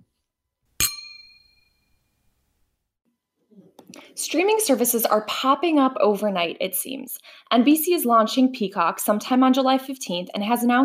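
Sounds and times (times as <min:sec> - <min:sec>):
glasses clinking: 0:00.8 - 0:01.9
speech: 0:04.1 - 0:10.8.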